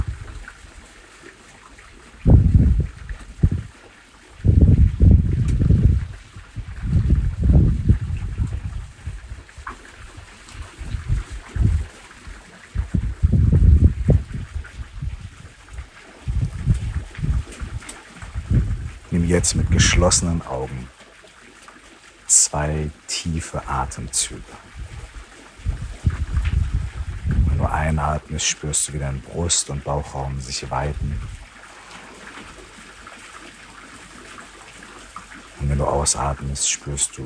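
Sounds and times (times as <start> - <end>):
gusts of wind buffeting the microphone outdoors: 0.0 - 0.6, 2.2 - 20.9, 23.7 - 28.3, 29.1 - 31.5
water flowing steadily outdoors: 0.0 - 37.2
speech: 19.4 - 20.9, 22.5 - 24.8, 27.8 - 31.3, 35.9 - 37.2.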